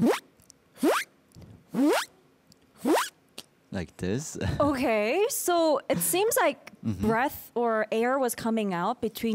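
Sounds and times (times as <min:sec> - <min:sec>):
voice imitating a zipper closing by breathing in: 0:01.7 - 0:02.2, 0:02.8 - 0:03.2
speech: 0:03.8 - 0:09.3.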